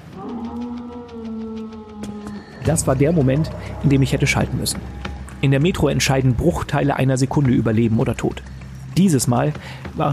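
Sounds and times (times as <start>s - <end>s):
large mutated dog-like creature howling: 0.0s - 6.4s
faint rhythmic rustling: 0.0s - 10.1s
speech: 2.6s - 10.1s.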